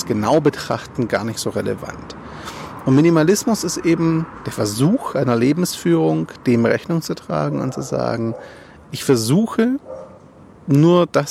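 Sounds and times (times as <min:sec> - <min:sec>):
speech: 0:00.1 - 0:10.0, 0:10.7 - 0:11.2
neighbours' dog barking muffled: 0:07.6 - 0:08.6, 0:09.8 - 0:10.2.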